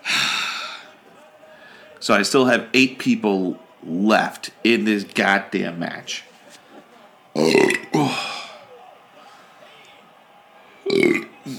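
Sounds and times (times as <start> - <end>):
speech: 2.0 - 6.3
person burping: 7.4 - 8.4, 10.9 - 11.3.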